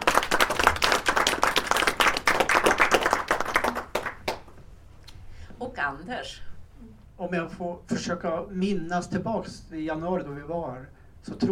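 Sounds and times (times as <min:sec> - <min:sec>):
people at a members' meeting clapping: 0:00.0 - 0:04.5
speech: 0:05.8 - 0:11.4.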